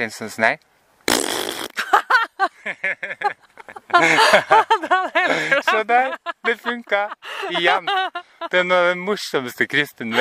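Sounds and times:
speech: 0:00.0 - 0:00.7, 0:02.6 - 0:10.1
whoopee cushion fart noise: 0:01.1 - 0:01.8
laughter: 0:01.8 - 0:08.7.

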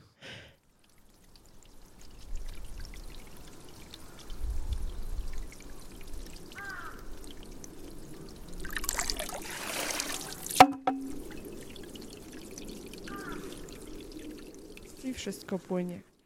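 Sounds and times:
water trickling in a quiet outdoor garden: 0:00.6 - 0:16.2
sharp hollow bamboo knock of a tipping Japanese shishi-odoshi: 0:10.6 - 0:11.2
speech: 0:15.2 - 0:16.1.

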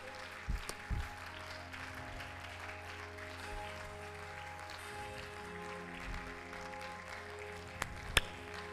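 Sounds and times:
crowd applauding: 0:00.0 - 0:08.7
sustained musical tones: 0:00.0 - 0:08.7.

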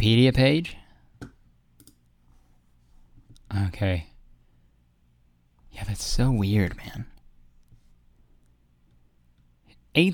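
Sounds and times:
speech: 0:00.0 - 0:00.8, 0:03.5 - 0:04.1, 0:05.8 - 0:07.1, 0:10.0 - 0:10.1
computer mouse clicks: 0:01.2 - 0:02.1.

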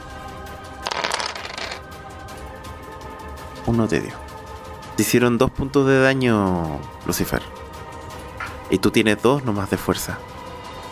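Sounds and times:
dice tumbling across a hard surface: 0:00.8 - 0:01.8
speech: 0:03.6 - 0:04.3, 0:05.0 - 0:07.6, 0:08.7 - 0:10.3.

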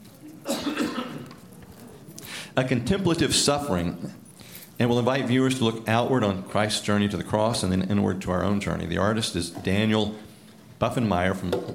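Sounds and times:
throat clearing: 0:00.4 - 0:01.4
speech: 0:02.6 - 0:04.2, 0:04.8 - 0:11.7.

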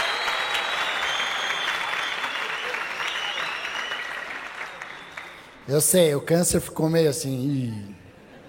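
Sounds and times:
comedy roast audience applauding: 0:00.0 - 0:05.6
speech: 0:05.7 - 0:08.0.

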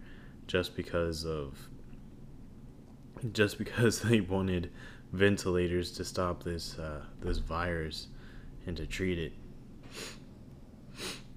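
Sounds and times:
faint low hum: 0:00.0 - 0:11.3
speech: 0:00.5 - 0:01.7, 0:03.2 - 0:10.2
person sniffling from allergies: 0:09.8 - 0:10.3, 0:10.9 - 0:11.3.

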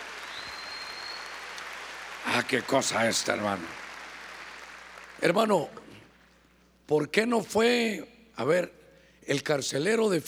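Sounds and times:
large audience clapping loudly: 0:00.0 - 0:05.3
speech: 0:02.3 - 0:03.8, 0:05.2 - 0:06.0, 0:06.9 - 0:10.2.

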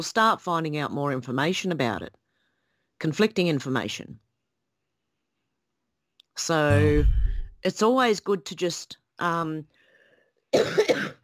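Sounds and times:
speech: 0:00.0 - 0:02.2, 0:03.0 - 0:04.2, 0:06.4 - 0:09.8, 0:10.5 - 0:11.0
person's smoker's cough: 0:10.6 - 0:11.2.

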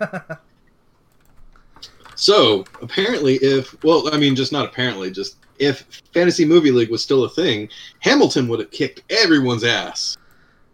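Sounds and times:
speech: 0:00.0 - 0:00.4, 0:02.2 - 0:10.2
typing on a computer keyboard: 0:01.1 - 0:05.8.

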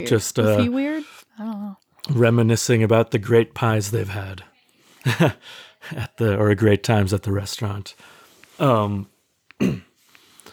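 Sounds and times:
speech: 0:00.0 - 0:09.9
person clearing throat: 0:09.6 - 0:09.9
person coughing: 0:09.6 - 0:09.9.

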